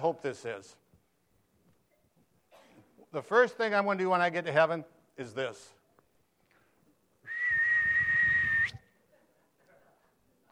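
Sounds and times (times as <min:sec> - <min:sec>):
speech: 0:00.0 - 0:00.8, 0:03.1 - 0:05.8
person whistling a signature whistle: 0:07.3 - 0:08.8.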